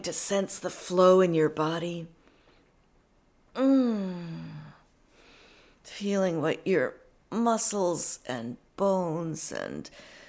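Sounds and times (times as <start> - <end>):
speech: 0.0 - 2.2, 3.6 - 4.5, 5.8 - 10.2
voiced yawn during a stretch: 3.6 - 4.8.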